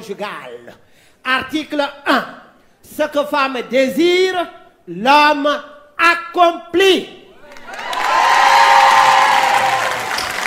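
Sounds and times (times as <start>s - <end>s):
speech: 0.0s - 7.2s
women in audience applauding: 7.4s - 10.4s.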